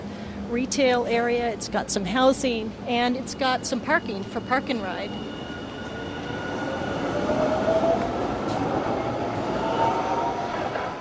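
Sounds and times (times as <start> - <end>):
speech: 0.5 - 5.4
train rolling through a rail station, wheels rumbling on track: 0.6 - 10.9
faint high metallic squeals of train: 3.4 - 8.0.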